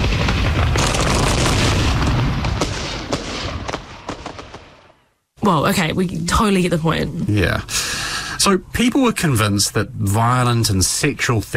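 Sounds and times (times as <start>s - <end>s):
loud booming explosion: 0.0s - 4.9s
scattered crackles and debris-like pops: 0.0s - 5.0s
speech: 5.5s - 11.5s.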